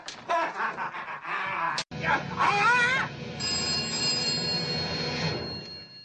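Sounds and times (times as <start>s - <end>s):
laughter: 0.2s - 2.3s
dense loud film-style soundtrack: 1.9s - 3.7s
telephone bell ringing: 3.4s - 6.0s.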